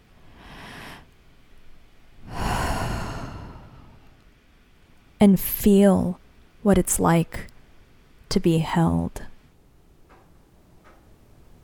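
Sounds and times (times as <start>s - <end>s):
slow deep breath during a guided relaxation exercise: 0.3s - 1.1s, 2.2s - 4.2s
speech: 5.2s - 7.5s, 8.3s - 9.3s.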